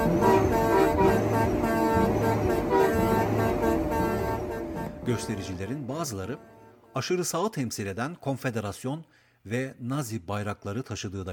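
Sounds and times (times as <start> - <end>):
big trucks honking horns during a truckers' protest in Ottawa: 0.0 - 6.9
speech: 5.2 - 11.3.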